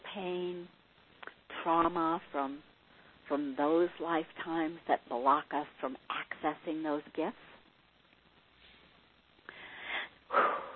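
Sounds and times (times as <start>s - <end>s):
speech: 0.2s - 0.8s, 1.6s - 2.7s, 3.3s - 7.5s
person breathing deeply during a guided clearing session: 9.5s - 10.7s.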